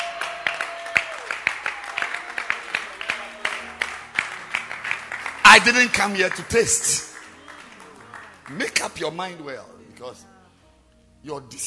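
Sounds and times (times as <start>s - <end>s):
audience clapping hands rhythmically: 0.0s - 9.3s
speech: 5.6s - 7.1s, 8.5s - 10.3s, 11.2s - 11.6s.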